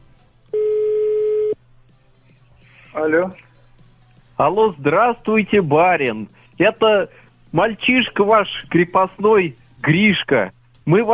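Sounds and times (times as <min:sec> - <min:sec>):
telephone tone while dialing a mobile number: 0:00.6 - 0:01.6
speech: 0:03.0 - 0:03.5, 0:04.4 - 0:11.1.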